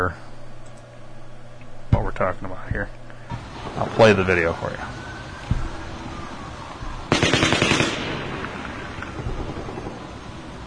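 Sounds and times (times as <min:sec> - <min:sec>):
speech: 0:00.0 - 0:00.3, 0:02.2 - 0:03.0, 0:03.7 - 0:05.0
faint noise: 0:00.0 - 0:10.6
single sharp gunshot crack: 0:07.1 - 0:10.0
rapid burst of automatic gunfire: 0:07.1 - 0:10.4.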